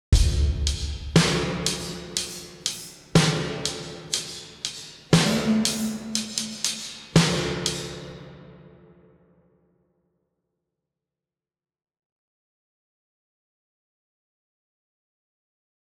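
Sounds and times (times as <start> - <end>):
reverse crash drums: 0.2 - 8.4.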